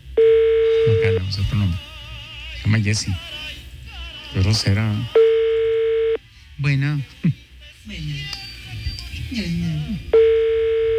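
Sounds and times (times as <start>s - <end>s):
telephone line tone while another number is dialed: 0.0s - 1.6s, 4.5s - 6.2s, 10.1s - 10.9s
speech: 1.3s - 1.9s, 2.6s - 3.6s, 4.3s - 5.2s, 6.6s - 8.4s, 9.3s - 10.2s.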